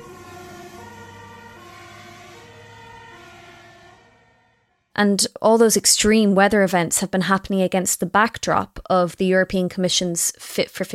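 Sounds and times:
town alarm sirens wailing: 0.0 - 5.0
speech: 5.0 - 10.9.

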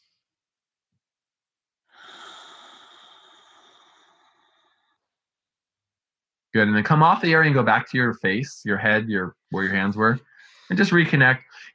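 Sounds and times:
slow breath exhaled through the mouth during a guided relaxation exercise: 1.9 - 5.0
speech: 6.5 - 11.7.

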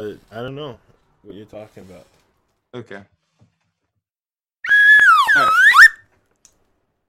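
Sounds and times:
speech: 0.0 - 3.2
slide whistle: 4.6 - 6.0.

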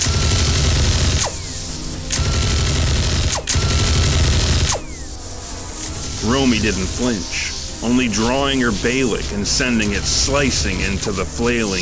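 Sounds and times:
alien guns firing wildly: 0.0 - 1.5, 2.1 - 4.8
speech: 6.4 - 11.8.

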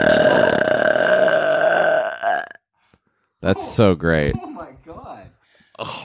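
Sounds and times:
long loud burp after gulping air: 0.0 - 2.7
speech: 3.4 - 4.5.

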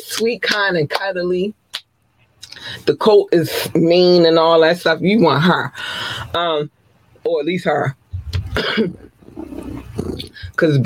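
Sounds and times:
speech: 0.2 - 1.6, 2.8 - 8.0, 8.6 - 10.8
quieter rumbling vocal sounds: 8.1 - 10.6
woman imitating a big cat's roar with her voice: 8.8 - 10.5.

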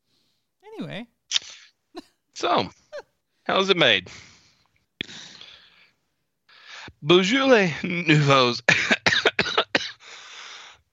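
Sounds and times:
speech: 0.8 - 1.4, 2.4 - 2.8, 3.5 - 4.3, 7.0 - 8.8
person coughing: 1.9 - 2.2, 8.7 - 10.0.

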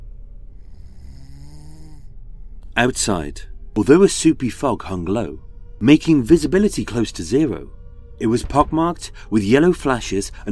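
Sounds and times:
man snoring: 0.6 - 2.2
speech: 2.8 - 10.5.

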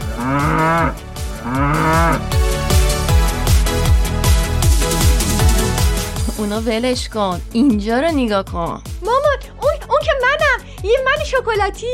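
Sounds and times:
cow mooing: 0.0 - 2.4
bouncy rhythmic music track with a steady beat: 0.0 - 11.9
speech: 6.5 - 9.2, 10.8 - 11.9.

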